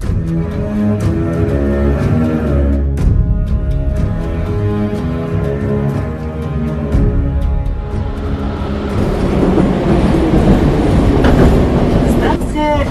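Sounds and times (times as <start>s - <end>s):
metro train motors whining at Taganskaya station: 0.2s - 12.8s
metro train track noise: 4.1s - 12.8s
metro train wheels clacking over rail joints: 8.3s - 12.8s.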